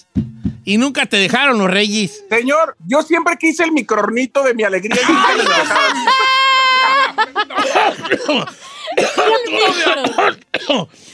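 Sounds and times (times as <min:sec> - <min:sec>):
speech: 0:00.7 - 0:06.1, 0:07.2 - 0:11.1
laughter: 0:04.9 - 0:08.6
loud rough coughing: 0:07.6 - 0:10.9.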